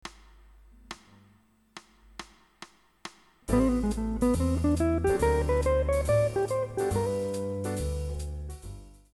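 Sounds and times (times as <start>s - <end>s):
ii V I jazz licks: 3.5s - 8.6s.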